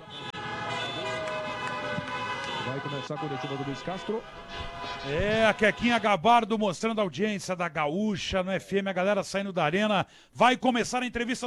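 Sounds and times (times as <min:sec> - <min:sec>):
car horns honking as football fans celebrate: 0:00.0 - 0:06.2
traffic noise: 0:00.0 - 0:06.7
speech: 0:02.6 - 0:11.4.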